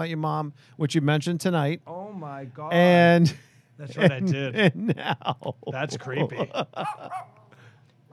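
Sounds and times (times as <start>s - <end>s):
speech: 0.0s - 7.3s
laughter: 3.2s - 7.5s
dog barking: 6.8s - 7.4s
dog yelping: 6.8s - 7.5s.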